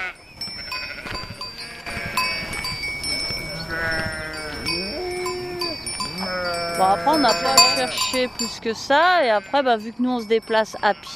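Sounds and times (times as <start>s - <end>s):
large flock of sheep bleating: 0.0s - 2.6s, 3.4s - 8.0s
faint steady ringing of bells: 0.0s - 11.1s
speech: 6.8s - 11.1s.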